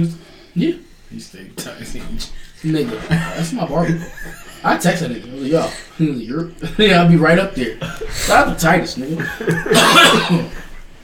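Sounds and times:
speech: 0:00.0 - 0:10.6
laughter: 0:02.6 - 0:10.8
harsh cough: 0:02.8 - 0:04.6, 0:09.2 - 0:10.8.

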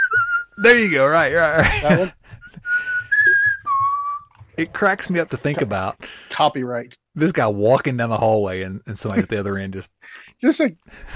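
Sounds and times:
person whistling a western-style melody: 0:00.0 - 0:00.6, 0:02.4 - 0:04.3
speech: 0:00.6 - 0:02.4, 0:04.6 - 0:11.1
laughter: 0:01.3 - 0:02.6
soft low thumps: 0:01.4 - 0:04.8.

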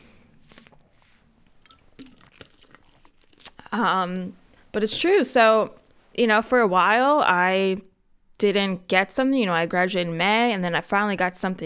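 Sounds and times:
airy slurps sipping an iced tea: 0:00.0 - 0:03.8
speech: 0:03.7 - 0:11.6.

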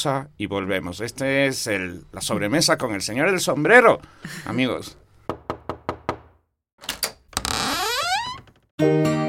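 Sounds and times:
speech: 0:00.0 - 0:05.0, 0:08.8 - 0:09.1
knocking on a door: 0:05.3 - 0:06.4.

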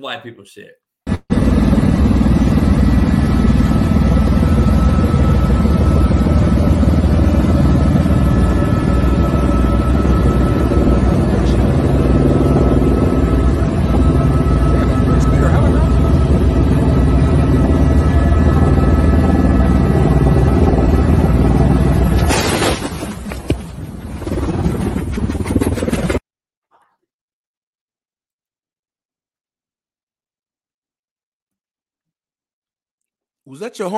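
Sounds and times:
speech: 0:00.0 - 0:00.9, 0:33.5 - 0:33.9
helicopter rotor and engine roar in a played video: 0:01.1 - 0:22.5, 0:23.3 - 0:26.2.

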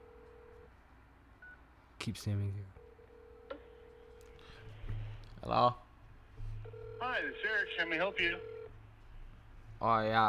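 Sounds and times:
telephone line ringing tone: 0:00.0 - 0:00.7, 0:02.8 - 0:04.0, 0:06.6 - 0:08.7
speech: 0:02.0 - 0:02.8, 0:05.5 - 0:05.8, 0:07.0 - 0:08.5, 0:09.8 - 0:10.2.

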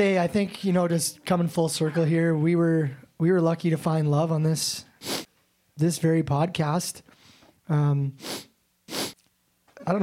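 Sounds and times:
speech: 0:00.0 - 0:05.2, 0:05.8 - 0:07.1, 0:07.7 - 0:08.5
person sniffling: 0:05.0 - 0:05.3, 0:08.2 - 0:09.2.

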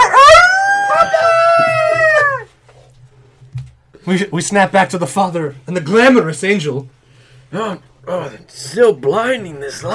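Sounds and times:
wolves howling: 0:00.0 - 0:02.5
speech: 0:04.1 - 0:09.9.

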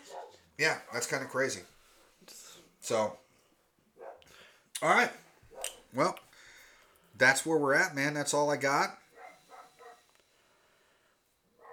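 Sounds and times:
dogs barking outside: 0:00.0 - 0:01.1, 0:04.0 - 0:04.3, 0:05.5 - 0:05.9, 0:09.1 - 0:10.1, 0:11.6 - 0:11.7
speech: 0:00.6 - 0:03.2, 0:04.8 - 0:05.2, 0:05.9 - 0:06.2, 0:07.2 - 0:09.0.

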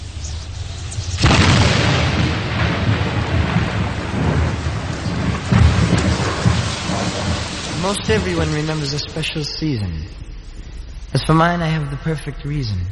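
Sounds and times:
steady hissing rain in a thunderstorm: 0:00.0 - 0:12.0
loud rolls of thunder: 0:01.2 - 0:10.8
speech: 0:07.8 - 0:10.2, 0:11.1 - 0:12.9.

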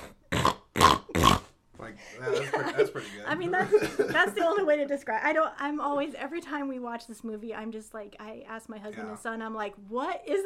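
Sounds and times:
person imitating pig snorts with grunting bursts: 0:00.0 - 0:01.6
speech: 0:01.9 - 0:10.4
laughter: 0:02.1 - 0:04.8.

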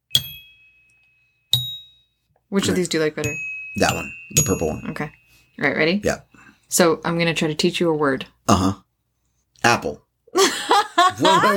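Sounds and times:
small bell being struck: 0:00.0 - 0:02.2, 0:03.2 - 0:06.0
speech: 0:02.5 - 0:08.8, 0:09.6 - 0:11.5
laughter: 0:10.4 - 0:11.5.

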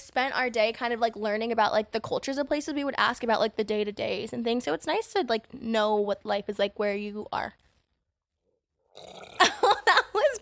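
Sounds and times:
speech: 0:00.2 - 0:07.6, 0:09.0 - 0:10.4
loud burp after drinking beer: 0:08.9 - 0:09.7.

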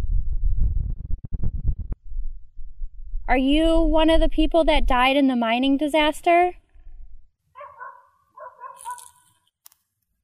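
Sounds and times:
low rumble: 0:00.0 - 0:05.1, 0:06.6 - 0:07.3
speech: 0:03.3 - 0:06.6
dog barking: 0:07.6 - 0:09.2.

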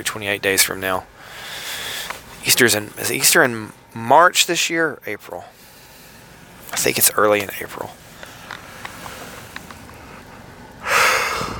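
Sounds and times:
speech: 0:00.0 - 0:01.5, 0:02.4 - 0:05.6, 0:06.8 - 0:08.0
person yawning: 0:10.9 - 0:11.5.

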